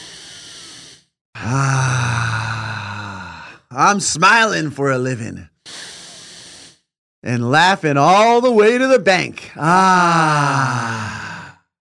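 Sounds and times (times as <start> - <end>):
deep breath drawn in: 0.0 - 3.7, 5.7 - 6.9, 10.4 - 11.7
speech: 1.4 - 2.1, 3.7 - 5.5, 7.2 - 11.2.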